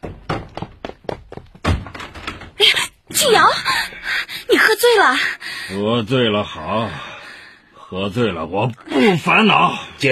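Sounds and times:
heavy knocking on a door: 0.0s - 2.5s
speech: 2.6s - 3.8s, 4.9s - 7.1s, 7.9s - 10.1s.

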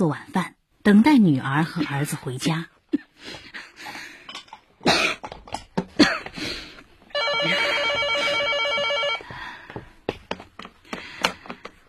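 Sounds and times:
speech: 0.0s - 3.4s
coughs: 4.8s - 6.4s
telephone bell ringing: 7.1s - 9.4s.

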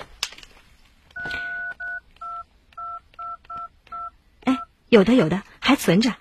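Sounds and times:
telephone keypad tones of paired pitches dialing a phone number: 1.2s - 4.1s
speech: 4.9s - 6.1s.

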